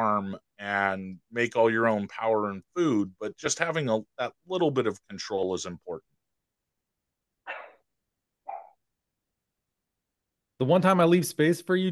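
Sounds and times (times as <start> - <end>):
speech: 0.0 - 6.1, 10.6 - 11.9
dog barking: 7.5 - 7.8.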